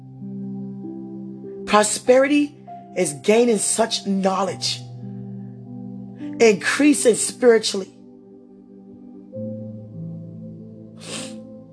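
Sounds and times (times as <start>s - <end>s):
speech: 1.7s - 4.8s, 6.4s - 8.0s
person sniffing: 11.0s - 11.5s.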